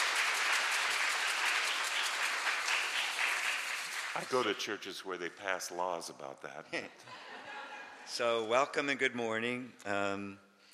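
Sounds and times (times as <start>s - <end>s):
church audience applause: 0.0s - 4.6s
speech: 4.2s - 7.3s, 8.1s - 10.4s
laughter: 6.6s - 8.1s.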